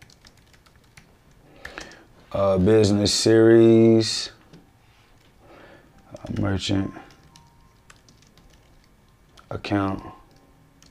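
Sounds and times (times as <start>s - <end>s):
typing on a keyboard: 0.0s - 2.0s, 6.0s - 10.8s
speech: 2.3s - 4.4s, 6.4s - 7.0s, 9.5s - 10.2s.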